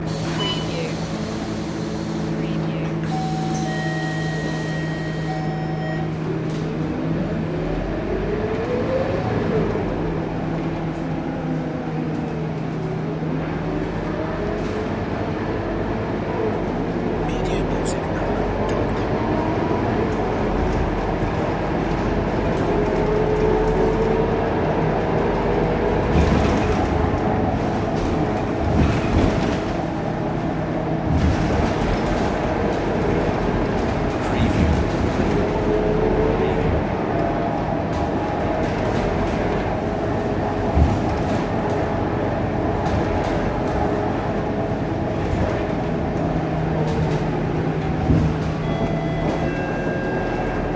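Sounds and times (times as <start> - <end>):
bus ride in Singapore: 0.0 - 50.7.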